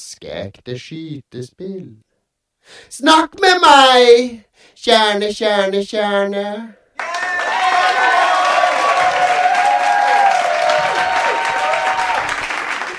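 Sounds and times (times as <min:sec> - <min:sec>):
speech: 0:00.0 - 0:07.1
audience applause after a poem reading: 0:07.0 - 0:12.9
cheering voices: 0:07.0 - 0:12.9.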